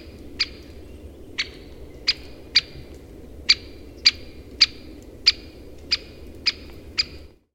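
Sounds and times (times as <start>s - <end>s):
low background noise: 0.0s - 7.5s
Great spotted woodpecker abrupt clicking kik calls in summer: 0.4s - 0.8s, 1.4s - 2.8s, 3.5s - 7.2s.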